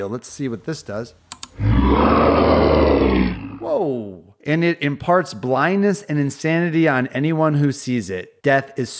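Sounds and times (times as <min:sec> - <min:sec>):
speech: 0:00.0 - 0:08.9
deep terrifying roar of a buffalo-like water monster: 0:01.6 - 0:03.7.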